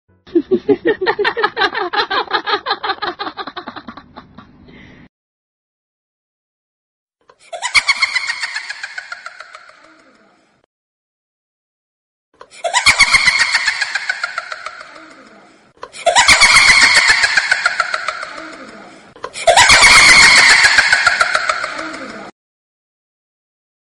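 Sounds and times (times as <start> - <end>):
creepy ghost laughter sound effect: 0.3 - 4.6, 7.4 - 10.3, 12.4 - 22.3.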